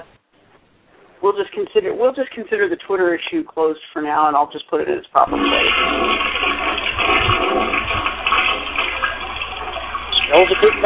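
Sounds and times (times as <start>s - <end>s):
speech: 1.2s - 7.8s, 10.3s - 10.8s
toilet flushing: 5.2s - 10.8s.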